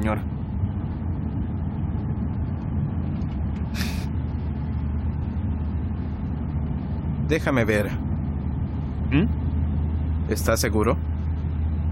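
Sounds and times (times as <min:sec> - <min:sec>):
speech: 0:00.0 - 0:00.4, 0:07.3 - 0:08.1, 0:09.1 - 0:09.4, 0:10.3 - 0:11.1
bus in motion rumbling: 0:00.0 - 0:11.9
bus air-brake hiss: 0:03.8 - 0:04.1.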